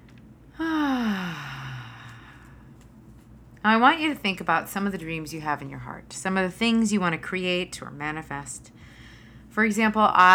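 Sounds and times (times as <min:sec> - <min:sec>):
long slow deep breath in during a guided relaxation: 0:00.6 - 0:02.7
speech: 0:03.6 - 0:09.0, 0:09.6 - 0:10.3.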